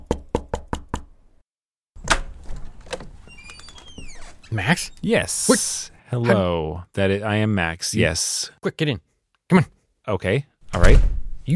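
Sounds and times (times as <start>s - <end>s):
knocking on a door: 0.0s - 1.2s
speech: 4.5s - 11.5s
thump: 10.8s - 11.4s.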